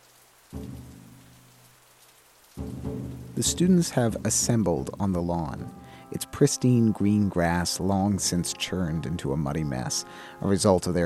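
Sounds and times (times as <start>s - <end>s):
pouring rain: 0.0s - 11.0s
loud low droning rumble: 0.6s - 1.7s, 2.6s - 6.0s
speech: 3.4s - 11.0s.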